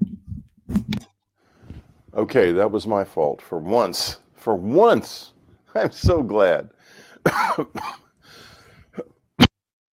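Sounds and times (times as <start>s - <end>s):
breathing: 1.4s - 2.0s, 6.8s - 7.3s, 8.2s - 9.0s
speech: 2.2s - 8.0s
person coughing: 7.3s - 8.1s.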